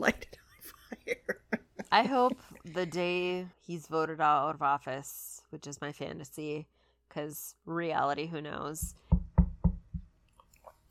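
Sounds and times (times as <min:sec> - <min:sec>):
laughter: 0:00.6 - 0:02.3
speech: 0:02.0 - 0:09.0
knocking on wood: 0:08.8 - 0:10.1.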